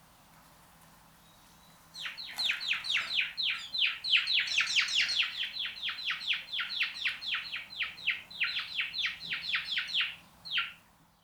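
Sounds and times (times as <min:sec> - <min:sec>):
House sparrow Passer domesticus chirping: 0:02.0 - 0:10.8.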